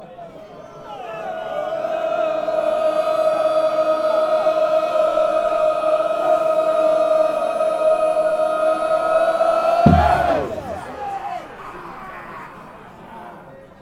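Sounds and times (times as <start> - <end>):
football fans chanting: 0.0 - 13.4
football goal kick: 9.9 - 10.9.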